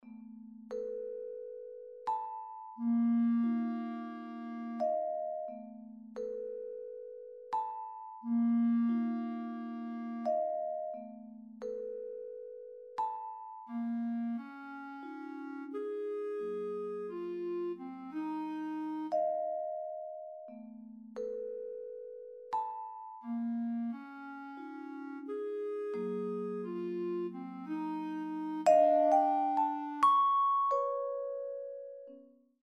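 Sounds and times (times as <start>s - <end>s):
vibraphone: 0.0s - 15.8s, 17.0s - 32.3s
clarinet: 2.8s - 5.7s, 8.2s - 11.1s, 13.7s - 20.5s, 23.2s - 30.3s.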